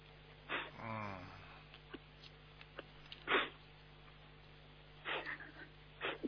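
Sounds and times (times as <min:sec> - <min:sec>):
quiet hum: 0:00.0 - 0:06.2
person sniffling while crying: 0:00.5 - 0:01.6, 0:03.2 - 0:03.6, 0:05.0 - 0:06.2
wavering sob-like whimper: 0:00.5 - 0:01.6.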